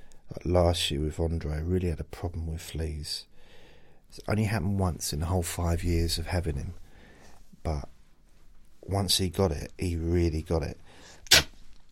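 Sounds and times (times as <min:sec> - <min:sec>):
faint hiss: 0:00.0 - 0:11.8
speech: 0:00.4 - 0:03.3, 0:04.1 - 0:06.8, 0:07.6 - 0:07.9, 0:08.9 - 0:11.4
person sneezing: 0:11.2 - 0:11.6.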